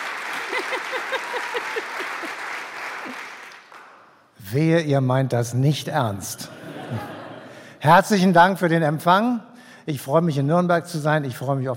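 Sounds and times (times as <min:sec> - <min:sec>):
dense audience applause: 0:00.0 - 0:04.0
laughter: 0:00.2 - 0:03.1, 0:06.5 - 0:07.7
speech: 0:00.7 - 0:03.3, 0:04.5 - 0:07.2, 0:07.8 - 0:11.7.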